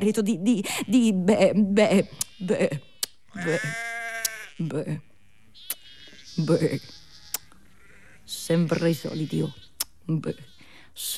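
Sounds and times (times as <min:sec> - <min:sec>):
speech: 0:00.0 - 0:03.9, 0:04.6 - 0:05.1, 0:06.4 - 0:07.0, 0:08.3 - 0:11.1
sheep bleating: 0:01.9 - 0:10.7.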